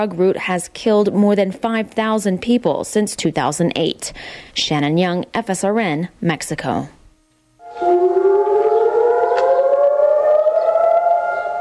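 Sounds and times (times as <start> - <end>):
speech: 0.0 - 7.0
civil defense siren wailing: 7.6 - 11.5.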